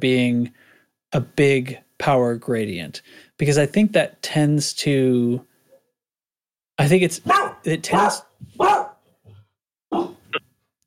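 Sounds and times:
speech: 0:00.0 - 0:05.5, 0:06.8 - 0:08.8
dog barks with trailing yips from upstairs: 0:07.3 - 0:09.0, 0:09.9 - 0:10.2.

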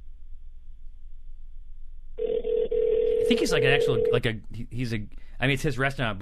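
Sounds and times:
low steady hum: 0:00.0 - 0:06.2
telephone ringback tone on an outgoing call through a phone line: 0:02.2 - 0:04.2
speech: 0:03.3 - 0:06.2.

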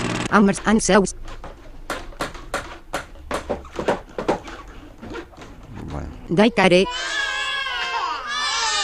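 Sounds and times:
speech: 0:00.3 - 0:01.5, 0:06.3 - 0:07.1
several babies wailing: 0:06.7 - 0:08.8.

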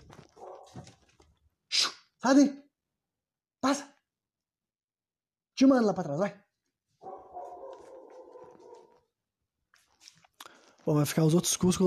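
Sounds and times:
dog barking: 0:00.2 - 0:01.0, 0:07.0 - 0:09.1
speech: 0:02.2 - 0:02.6, 0:03.6 - 0:03.9, 0:05.6 - 0:06.4, 0:10.9 - 0:11.8.

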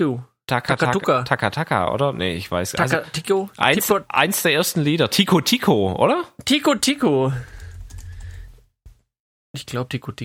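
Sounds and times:
speech: 0:00.0 - 0:07.5, 0:09.6 - 0:10.2
clicking of keys on a computer keyboard as someone googles a song title: 0:07.4 - 0:08.6.

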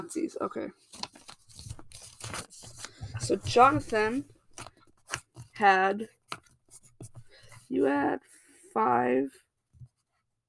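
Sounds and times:
speech: 0:00.1 - 0:01.2, 0:03.2 - 0:04.4, 0:05.6 - 0:06.2, 0:07.7 - 0:09.4
paper rustling and crinkling as someone searches for a pencil and paper: 0:00.8 - 0:07.7.

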